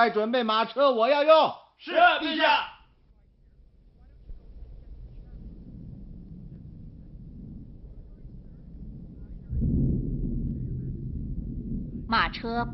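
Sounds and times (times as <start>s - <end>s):
speech: 0.0s - 2.7s, 12.1s - 12.7s
deep rumble of thunder: 2.9s - 12.7s
strong wind in a thunderstorm: 3.4s - 12.7s
rain in a thunderstorm: 4.1s - 12.7s.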